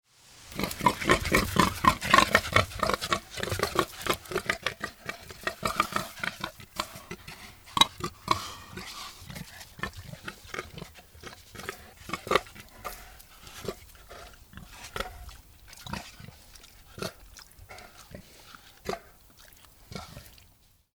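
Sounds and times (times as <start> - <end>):
wild boar sow grunting: 0.5 - 20.6.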